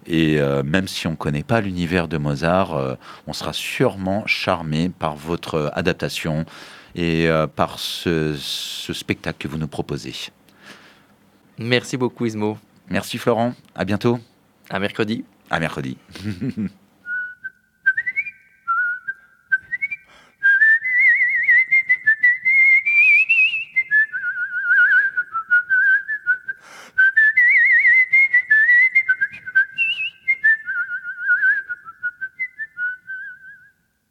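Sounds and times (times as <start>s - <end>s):
speech: 0.1s - 10.4s, 11.6s - 16.8s
person whistling a lively ornamented melody: 17.0s - 33.8s.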